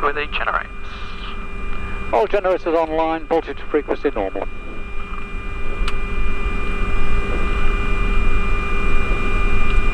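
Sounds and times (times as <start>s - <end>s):
aircraft engines idling after the engine start checklist: 0.0s - 9.9s
speech: 0.1s - 0.6s, 2.1s - 4.6s.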